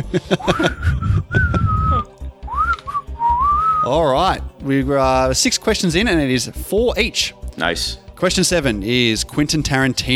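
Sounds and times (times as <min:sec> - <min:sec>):
speech: 0:00.0 - 0:01.4, 0:03.9 - 0:10.1
laughter: 0:00.0 - 0:02.0
person whistling a short tune: 0:00.5 - 0:03.9.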